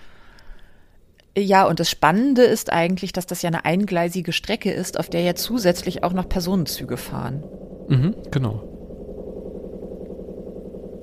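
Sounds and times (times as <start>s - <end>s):
speech: 1.4s - 8.7s
washing machine running a 60-degree wash: 3.7s - 11.0s.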